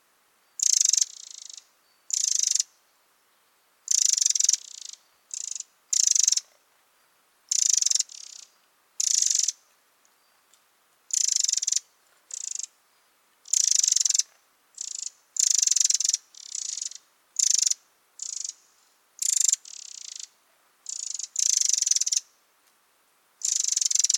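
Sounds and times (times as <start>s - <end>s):
Eurasian wren Troglodytes troglodytes giving dry rattling churrs: 0.6s - 2.7s, 3.9s - 6.5s, 7.5s - 9.6s, 13.5s - 18.6s, 19.2s - 22.2s, 23.4s - 24.1s.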